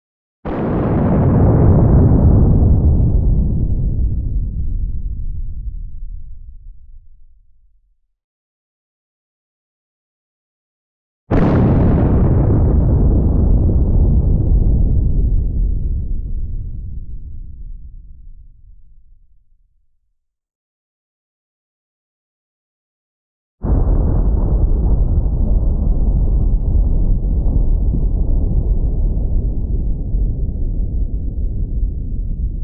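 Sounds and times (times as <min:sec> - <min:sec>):
nuclear bomb atomic explosion: 0:00.5 - 0:07.3, 0:11.3 - 0:19.0, 0:23.6 - 0:32.6.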